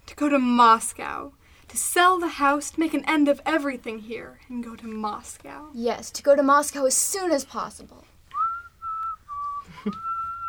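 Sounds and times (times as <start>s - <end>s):
speech: 0.2s - 8.1s, 9.8s - 10.1s
person whistling a tune: 8.4s - 10.4s.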